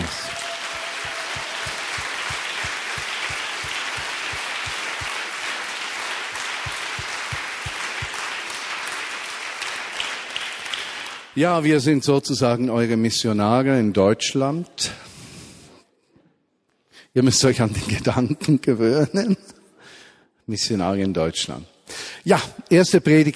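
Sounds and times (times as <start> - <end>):
large audience applause: 0.0 - 11.3
speech: 11.4 - 15.0, 17.2 - 19.4, 20.5 - 23.3.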